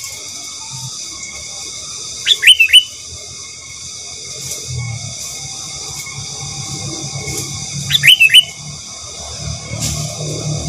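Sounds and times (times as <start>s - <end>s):
sooty-headed bulbul singing slurred whistled notes: 0.0s - 3.9s, 4.8s - 8.8s
steady hum: 0.0s - 10.6s.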